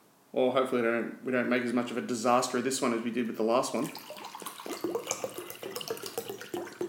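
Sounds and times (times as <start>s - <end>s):
speech: 0.3s - 4.3s
water pouring into water bottles: 3.1s - 6.8s.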